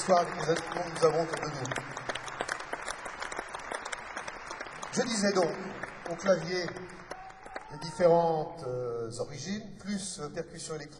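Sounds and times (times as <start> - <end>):
speech: 0.0 - 2.0, 5.0 - 7.0, 7.7 - 10.9
audience applause at a live music concert: 0.0 - 8.1.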